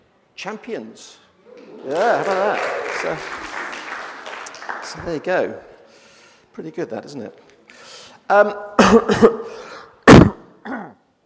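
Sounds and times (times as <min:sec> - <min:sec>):
speech: 0:00.4 - 0:03.4, 0:04.8 - 0:05.7, 0:06.6 - 0:07.4, 0:08.3 - 0:09.6
person coughing: 0:08.8 - 0:11.0
throat clearing: 0:08.8 - 0:11.0.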